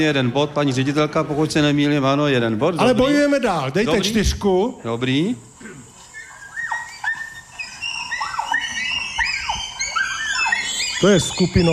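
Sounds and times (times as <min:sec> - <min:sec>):
speech: 0:00.0 - 0:05.5, 0:11.0 - 0:11.7
crowd of schoolchildren shouting and shrieking on a zoo visit: 0:06.1 - 0:11.7.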